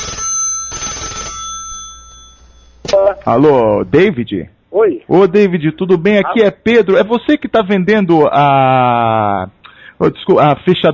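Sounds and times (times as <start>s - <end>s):
telephone ringback tone on an outgoing call: 0.0s - 2.8s
speech: 2.9s - 10.9s.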